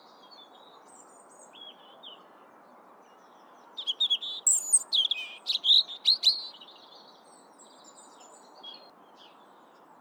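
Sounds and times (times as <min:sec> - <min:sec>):
European robin Erithacus rubecula singing: 0:03.8 - 0:06.6.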